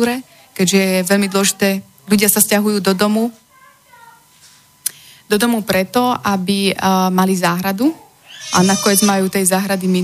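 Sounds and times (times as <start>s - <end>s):
speech: 0.0s - 3.4s, 5.3s - 10.0s
baby crying: 8.2s - 9.4s.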